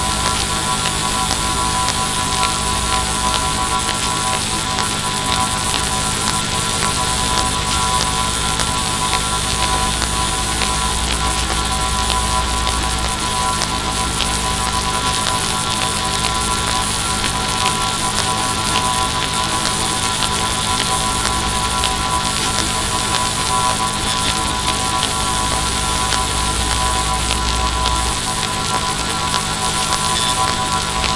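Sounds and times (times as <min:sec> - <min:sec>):
dense hiss of static: 0:00.0 - 0:31.1
steady electrical hum from power grid disturbance: 0:00.0 - 0:31.1.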